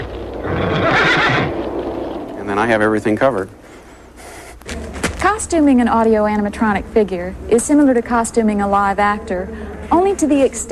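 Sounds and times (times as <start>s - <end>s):
horse whinnying: 0.0s - 1.6s
speech: 2.6s - 3.6s, 5.4s - 10.7s.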